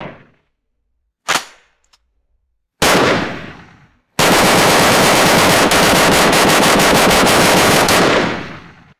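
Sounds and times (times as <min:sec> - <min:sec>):
rapid AR15 rifle gunshots: 0:02.8 - 0:08.9.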